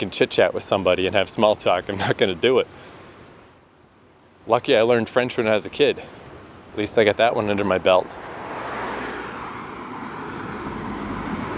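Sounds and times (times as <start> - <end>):
speech: 0.0 - 2.9, 4.5 - 8.2
old sports car driving past with throaty engine roar: 8.2 - 11.5.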